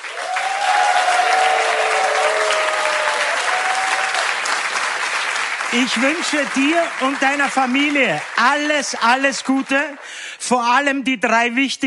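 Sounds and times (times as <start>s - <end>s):
faint whistles and cheers: 0.0s - 4.3s
studio audience applause: 0.0s - 10.4s
speech: 5.7s - 11.8s.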